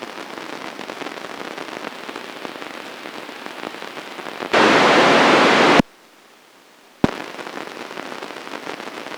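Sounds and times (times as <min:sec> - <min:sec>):
10MHz noise: 0:00.8 - 0:06.0, 0:07.0 - 0:09.1.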